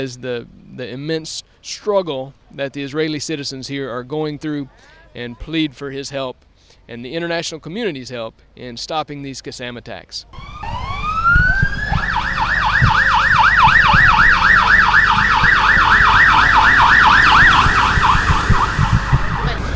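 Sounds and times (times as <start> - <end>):
speech: 0.0 - 10.9
rumbling street traffic: 10.3 - 19.7
ambulance sirens wailing in Sderot Israel: 10.4 - 19.7.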